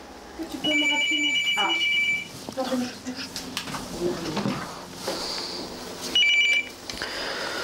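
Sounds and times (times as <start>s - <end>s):
speech: 0.4s - 5.3s
telephone ringing in a struggling small business: 0.6s - 2.3s, 6.2s - 6.8s.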